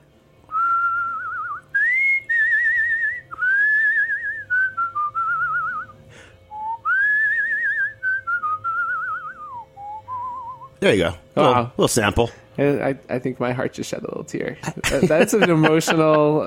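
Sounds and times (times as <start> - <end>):
person whistling a slow wavering melody: 0.5 - 10.8
speech: 10.8 - 16.4
laughter: 14.6 - 16.4.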